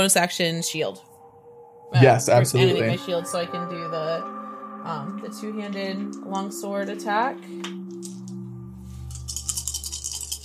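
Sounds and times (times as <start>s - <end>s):
speech: 0.0s - 1.1s, 1.9s - 8.1s
low steady hum: 0.0s - 10.4s
handful of plastic dice shaken and rolled for a tabletop game: 9.2s - 10.4s.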